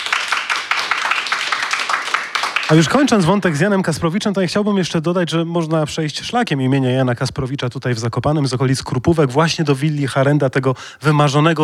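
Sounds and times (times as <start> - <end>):
audience applause after a lecture: 0.0 - 3.9
speech: 2.7 - 11.6.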